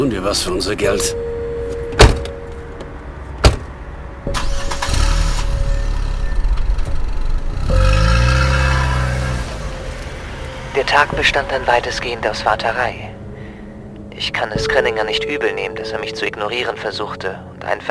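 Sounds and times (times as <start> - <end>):
speech: 0.2 - 1.3, 11.0 - 13.1, 14.2 - 17.8
car door thumps: 1.9 - 2.4, 3.4 - 3.8
car engine cranking, starting, idling and revving: 3.3 - 12.6.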